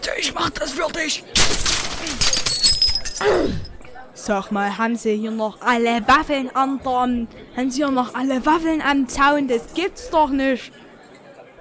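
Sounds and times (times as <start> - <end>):
speech: 0.1 - 10.8
bright clinking glass shards scattering: 1.4 - 3.8
crate full of glass bottles thrown and shattering: 1.4 - 3.8
low sliding thud of glass debris settling: 1.4 - 3.8.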